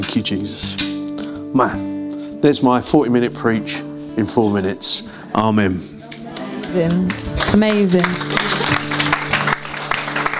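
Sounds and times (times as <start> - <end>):
speech: 0.0 - 0.8, 1.5 - 5.9, 6.7 - 8.5
church audience applauding after a short sermon: 6.1 - 10.3.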